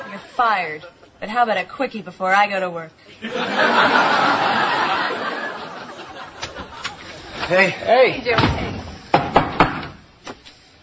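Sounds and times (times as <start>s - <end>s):
laughter: 0.0s - 1.2s, 3.1s - 7.8s
speech: 0.3s - 4.6s, 7.5s - 8.7s
knocking on a door: 9.2s - 10.0s.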